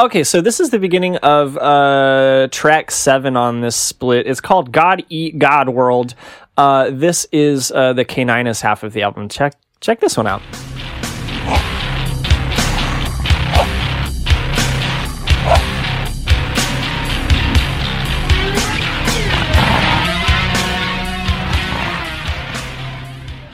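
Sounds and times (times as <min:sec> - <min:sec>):
speech: 0:00.0 - 0:11.8
loud dense heavy metal music with pounding drums and distorted guitars: 0:10.3 - 0:23.5
dog barking in sharp bursts: 0:12.6 - 0:13.8, 0:15.3 - 0:15.7.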